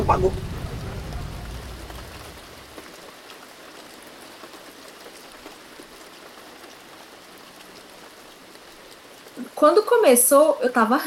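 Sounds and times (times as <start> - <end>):
low rumble: 0.0 - 3.0
heavy rain pouring: 0.0 - 11.0
speech: 0.1 - 0.6, 9.6 - 11.0.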